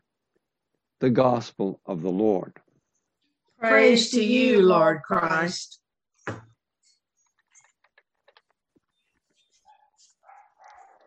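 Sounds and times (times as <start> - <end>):
speech: 1.0 - 2.7, 3.6 - 6.4
dogs barking: 9.6 - 11.0.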